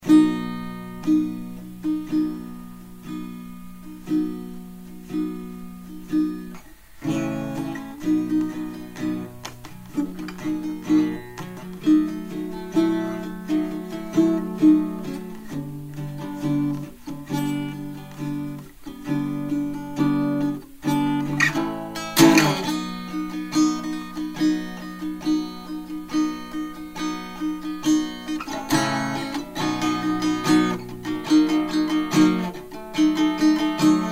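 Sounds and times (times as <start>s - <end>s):
blues guitar: 0.0s - 34.1s.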